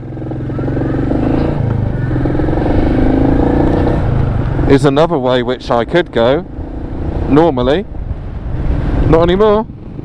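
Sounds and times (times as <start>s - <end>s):
car engine accelerating after shifting into gear: 0.0s - 7.8s
speech: 4.7s - 6.5s, 7.3s - 7.9s, 9.1s - 9.8s.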